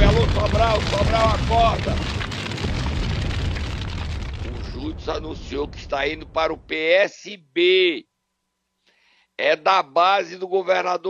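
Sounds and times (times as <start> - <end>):
bomb explosion sound effect: 0.0 - 6.8
speech: 0.6 - 2.2, 4.9 - 8.1, 9.4 - 11.0.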